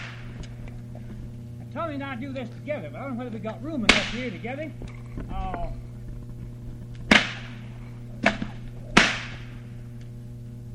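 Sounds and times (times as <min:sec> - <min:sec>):
whip cracks cutting straws: 0:00.0 - 0:00.3, 0:03.9 - 0:04.3, 0:07.1 - 0:07.6, 0:08.2 - 0:09.6
steady low hum: 0:00.0 - 0:10.7
speech: 0:01.8 - 0:05.9.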